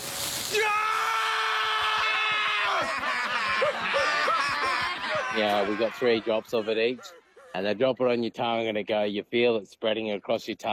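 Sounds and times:
cartoon character screaming in pain: 0:00.1 - 0:03.0, 0:05.0 - 0:06.3
laughter: 0:01.9 - 0:07.5
speech: 0:05.4 - 0:10.7.

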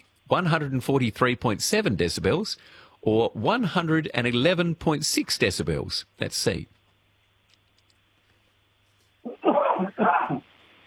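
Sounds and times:
faint low background hum: 0:00.0 - 0:10.8
speech: 0:00.3 - 0:06.8
man coughing and clearing throat: 0:09.3 - 0:10.5.

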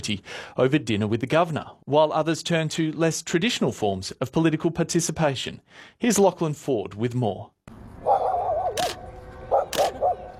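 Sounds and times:
speech: 0:00.0 - 0:07.6
sharp loud dog barks: 0:08.0 - 0:10.3.

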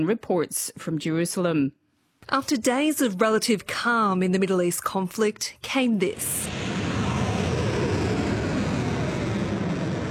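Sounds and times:
speech: 0:00.0 - 0:06.6
missiles and drones launched at military bases in Kuwait and Bahrain: 0:06.3 - 0:10.0.

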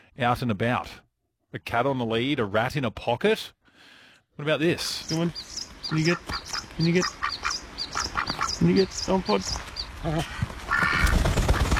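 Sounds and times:
speech: 0:00.2 - 0:07.3, 0:08.6 - 0:10.5
pet ducks quacking: 0:04.4 - 0:11.7.

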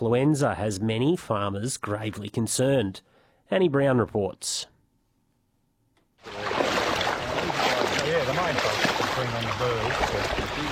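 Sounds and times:
speech: 0:00.0 - 0:04.7, 0:06.2 - 0:06.5, 0:08.3 - 0:10.7
person wading through knee-high water: 0:06.2 - 0:10.7.

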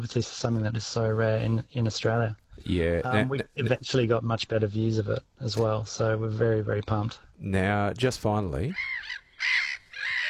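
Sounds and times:
speech: 0:00.0 - 0:09.7
black-headed gull calling: 0:08.7 - 0:10.2.

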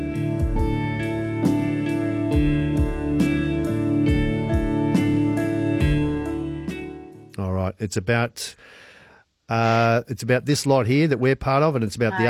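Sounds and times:
slow sustained rock song with organ-like chords and deep bass: 0:00.0 - 0:07.4
speech: 0:07.8 - 0:08.8, 0:09.5 - 0:12.2.

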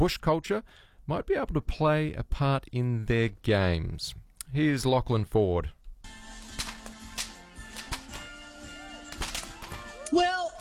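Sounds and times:
speech: 0:00.0 - 0:06.2
whip cracking: 0:06.4 - 0:10.6.

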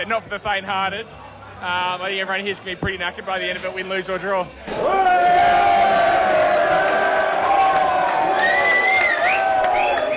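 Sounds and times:
speech: 0:00.0 - 0:05.7
large crowd booing: 0:04.7 - 0:10.1
higher whoops and shouts from the crowd: 0:04.8 - 0:10.1.

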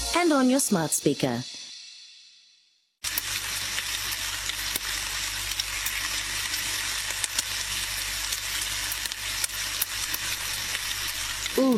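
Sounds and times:
speech: 0:00.1 - 0:01.6
sausages sizzling in a hot pan: 0:03.0 - 0:11.7.

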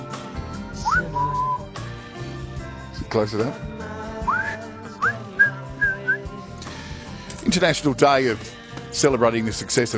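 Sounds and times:
person whistling a tune along with a song: 0:00.6 - 0:01.9, 0:04.2 - 0:06.4
speech: 0:07.4 - 0:08.4, 0:09.0 - 0:09.9.

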